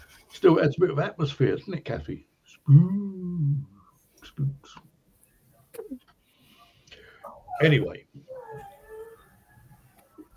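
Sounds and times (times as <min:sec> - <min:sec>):
speech: 0:00.4 - 0:03.7, 0:04.4 - 0:04.9, 0:07.6 - 0:08.7
dog squeaking and whimpering at a door: 0:07.2 - 0:10.3.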